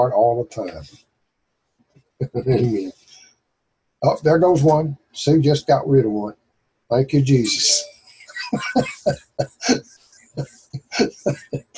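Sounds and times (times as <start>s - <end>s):
laughter: 0.0s - 0.8s, 2.2s - 2.9s, 4.0s - 6.3s, 7.0s - 11.7s
speech: 0.0s - 1.1s, 2.2s - 3.0s, 4.0s - 7.9s, 8.5s - 11.7s
person clearing throat during a prayer session: 2.2s - 2.9s, 7.0s - 9.8s, 10.8s - 11.7s
person coughing during a prayer session: 2.3s - 2.8s, 7.5s - 9.8s, 10.8s - 11.7s.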